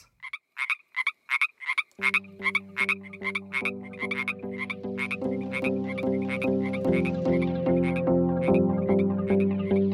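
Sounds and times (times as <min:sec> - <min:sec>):
American bullfrogs croaking: 0:00.0 - 0:09.9.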